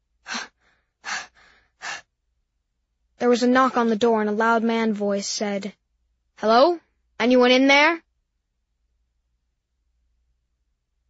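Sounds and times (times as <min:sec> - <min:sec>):
woman's breath let out in little puffs while hiding in a classroom: 0:00.2 - 0:02.2
speech: 0:03.3 - 0:05.8, 0:06.4 - 0:08.0.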